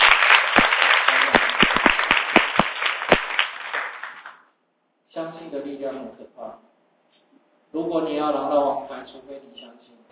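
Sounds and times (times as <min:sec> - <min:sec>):
class audience applause: 0:00.0 - 0:04.4
speech: 0:05.8 - 0:06.7, 0:07.7 - 0:10.1.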